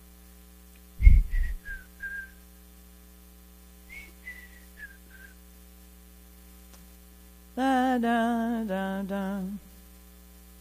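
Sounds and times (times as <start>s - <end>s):
steady electrical hum: 0.0s - 10.5s
person whistling an imitation of a bird's call: 1.0s - 2.3s
speech: 7.6s - 9.6s.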